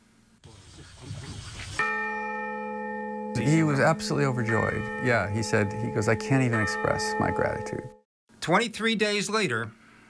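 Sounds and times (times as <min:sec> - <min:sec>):
church bell struck loud and close: 0:01.8 - 0:08.0
speech: 0:03.4 - 0:09.8.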